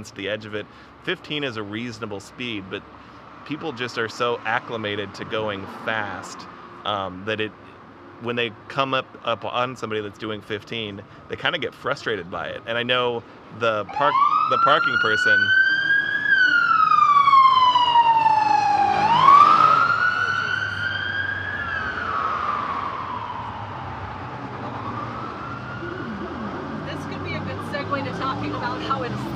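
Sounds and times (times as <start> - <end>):
speech: 0.0 - 7.6, 8.2 - 15.6
traffic rumble: 0.0 - 29.3
police car siren passing on road: 13.7 - 29.3.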